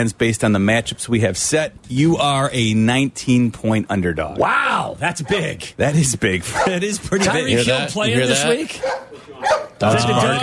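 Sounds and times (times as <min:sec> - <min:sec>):
speech: 0:00.0 - 0:10.4
dog yelp: 0:06.5 - 0:06.7, 0:08.8 - 0:09.8
dogs barking: 0:06.5 - 0:06.8, 0:08.7 - 0:09.8.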